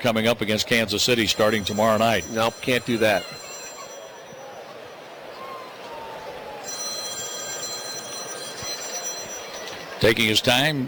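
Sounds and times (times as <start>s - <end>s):
speech: 0.0s - 3.4s, 10.0s - 10.8s
baseball game crowd noise: 0.0s - 10.8s
telephone bell ringing: 1.3s - 4.8s, 6.6s - 10.0s.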